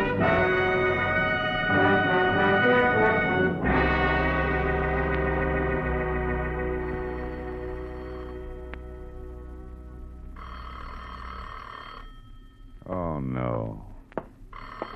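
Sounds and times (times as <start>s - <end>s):
music: 0.0s - 10.4s
old-fashioned telephone bell ringing: 7.0s - 8.6s, 10.4s - 12.9s, 14.5s - 14.9s.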